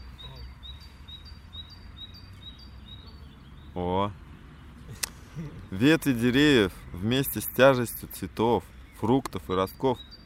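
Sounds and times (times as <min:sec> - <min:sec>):
small bird chirping: 0:00.0 - 0:05.8, 0:08.6 - 0:10.2
speech: 0:03.8 - 0:04.2, 0:05.4 - 0:10.2.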